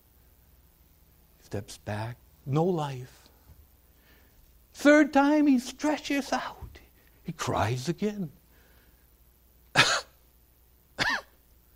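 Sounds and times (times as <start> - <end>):
speech: 1.5 - 3.2, 4.8 - 6.6, 7.2 - 8.4
child coughing: 9.8 - 10.2, 11.0 - 11.4.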